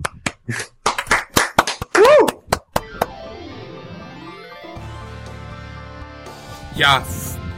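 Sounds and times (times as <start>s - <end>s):
small group clapping: 0.0s - 3.2s
person whooping or laughing: 1.9s - 2.4s
speech: 6.8s - 7.2s.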